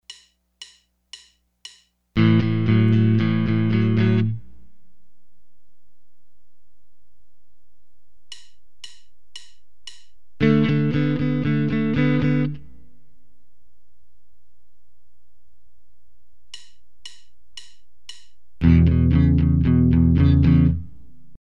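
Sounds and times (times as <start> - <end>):
guitar accompaniment riff: 2.2 - 4.6, 10.4 - 12.9, 18.6 - 21.3.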